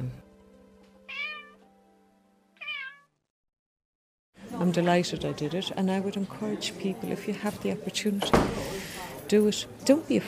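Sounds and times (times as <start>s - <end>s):
cat meowing: 1.1s - 1.6s, 2.6s - 3.2s
speech: 4.7s - 10.2s.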